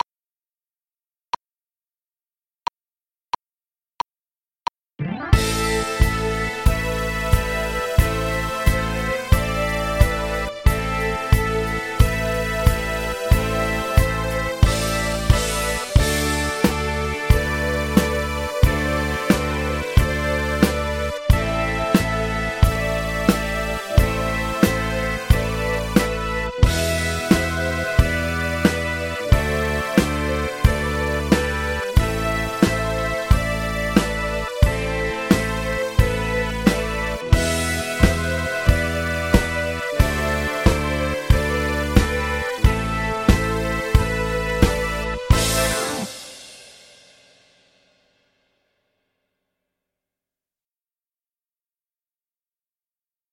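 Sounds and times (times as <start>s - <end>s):
rock keyboard: 5.0s - 46.6s
rock drums: 5.3s - 48.4s.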